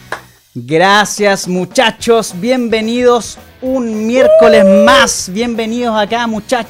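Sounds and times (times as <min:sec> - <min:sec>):
speech: 0:00.6 - 0:06.6
sustained bright harmonic tone: 0:04.2 - 0:05.1.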